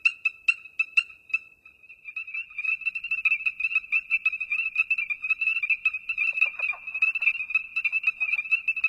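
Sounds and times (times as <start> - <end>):
ornate chorus frog chorus high piercing peeping in North America: 0.0 - 8.8.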